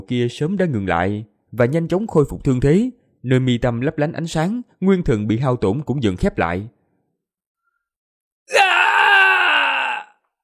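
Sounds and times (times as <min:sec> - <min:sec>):
speech: 0:00.0 - 0:06.8
man screaming in pain from a chest pierced by a black war spear: 0:08.5 - 0:10.2.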